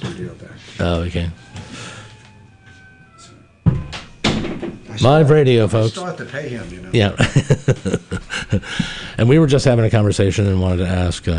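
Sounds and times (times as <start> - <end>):
faint steady hum: 0.0 - 11.3
speech: 0.2 - 1.9, 5.0 - 11.3
knock: 3.6 - 4.8
door closing with a sharp thump in a live radio studio: 3.6 - 5.0
laughter: 7.0 - 9.2.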